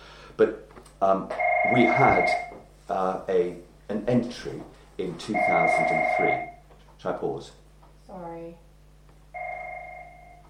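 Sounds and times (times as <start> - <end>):
faint low hum: 0.0 - 10.4
speech: 0.4 - 8.7
telephone ringing with a sustained electronic tone: 1.3 - 2.6, 5.4 - 6.6, 9.4 - 10.4.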